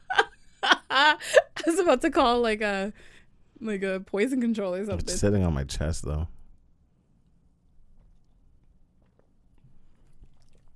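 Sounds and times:
low hum: 0.0s - 10.7s
speech: 1.1s - 6.4s
person chugging a drink with swallowing and mouth sounds: 7.6s - 10.7s.

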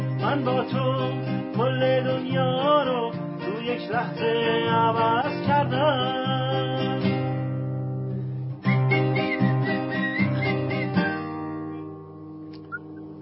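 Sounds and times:
steady instrumental backing music: 0.0s - 13.2s
speech: 0.2s - 7.1s
person whistling a melody: 8.6s - 11.4s, 12.7s - 13.2s.

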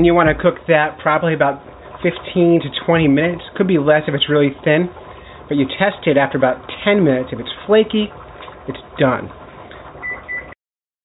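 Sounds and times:
speech: 0.0s - 9.4s
kitchen oven timer beeps: 10.0s - 10.6s.

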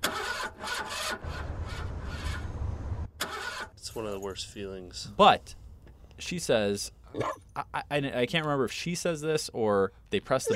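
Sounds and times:
car engine cranking, failing to start: 0.0s - 2.4s, 3.2s - 3.8s
speech: 3.9s - 5.6s, 6.2s - 10.5s.

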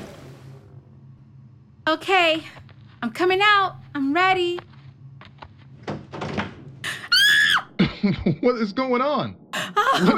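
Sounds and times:
speech: 1.9s - 4.7s, 8.0s - 10.1s
door banging open with thuds and rattles: 5.8s - 6.8s
laughter: 9.6s - 10.1s.

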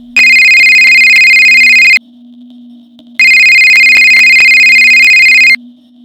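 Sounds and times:
mobile phone ringtone ringing: 0.2s - 2.0s, 3.2s - 5.6s.

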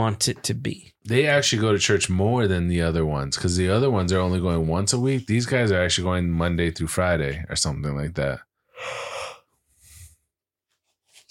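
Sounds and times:
speech: 0.0s - 9.1s
person yawning: 8.7s - 9.5s.

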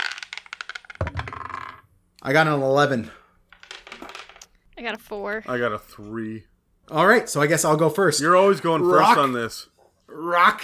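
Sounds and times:
dice rolling on a hard tabletop in a role-playing game: 0.0s - 1.9s, 3.5s - 4.6s
speech: 2.2s - 3.2s, 4.8s - 10.6s.

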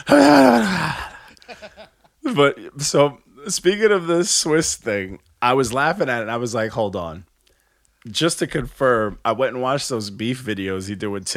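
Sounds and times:
person imitating heavy breathing into a microphone: 0.0s - 1.8s
speech: 0.1s - 0.6s, 1.7s - 7.3s, 8.0s - 11.3s.

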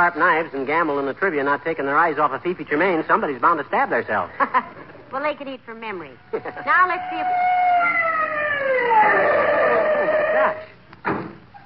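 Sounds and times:
speech: 0.0s - 9.5s, 10.4s - 10.7s
ambulance siren winding down: 6.2s - 10.8s.

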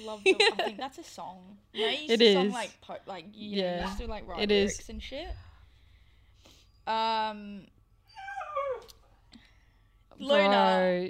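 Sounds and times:
speech: 0.0s - 5.5s, 6.9s - 7.8s, 10.2s - 11.0s
faint low hum: 2.8s - 11.0s
dog whimpering and whining: 8.1s - 9.0s.

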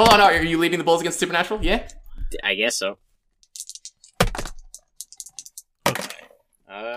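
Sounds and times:
speech: 0.0s - 3.0s, 6.7s - 6.9s
dice rattling during a game: 3.4s - 6.3s.

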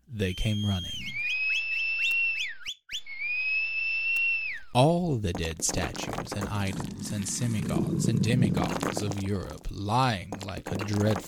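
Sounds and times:
speech: 0.2s - 1.0s, 4.8s - 11.2s
high shrill whistle: 0.3s - 4.8s.

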